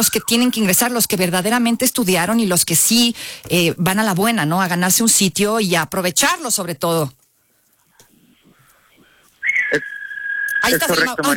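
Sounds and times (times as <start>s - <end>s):
loud steady high-pitched whistle: 0.0s - 0.6s, 9.4s - 11.1s
speech: 0.0s - 7.2s, 9.7s - 9.9s, 10.6s - 11.3s.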